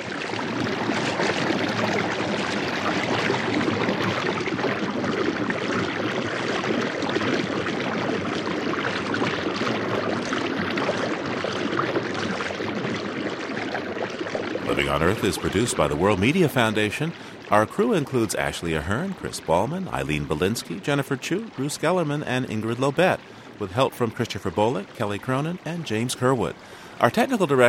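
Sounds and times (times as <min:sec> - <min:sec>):
water cascading through a mountain gorge: 0:00.0 - 0:27.6
speech: 0:15.0 - 0:27.6.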